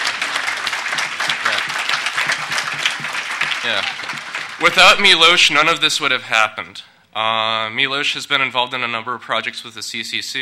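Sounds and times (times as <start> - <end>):
dense applause from a sizable audience: 0.0 - 6.0
speech: 3.7 - 4.0, 4.6 - 10.3.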